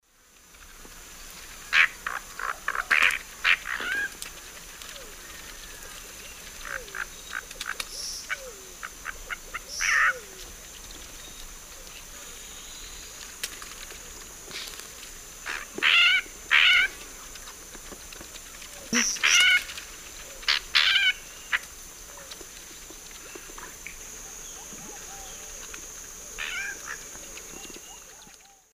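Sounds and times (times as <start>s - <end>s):
Chordeiles rupestris calling in the Eastern Lowlands of South America: 1.7s - 4.2s, 6.6s - 10.4s, 15.4s - 17.2s, 18.8s - 22.3s, 26.4s - 28.6s.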